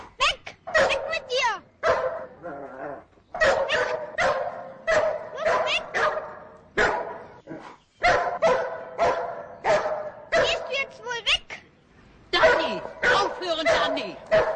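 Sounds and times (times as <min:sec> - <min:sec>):
dog barking: 0:00.7 - 0:02.4, 0:03.4 - 0:07.3, 0:08.0 - 0:10.8, 0:12.4 - 0:14.5.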